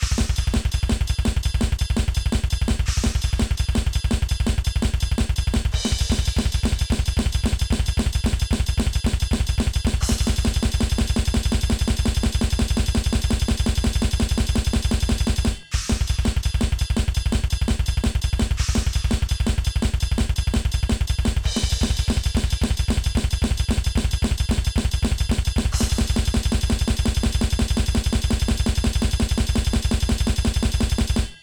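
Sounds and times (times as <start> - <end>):
drum beat: 0.0 - 31.4.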